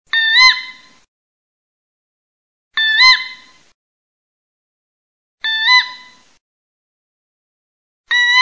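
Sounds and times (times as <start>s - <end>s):
little owl calling in a wood: 0.1s - 1.0s, 2.8s - 3.6s, 5.4s - 6.4s, 8.1s - 8.3s.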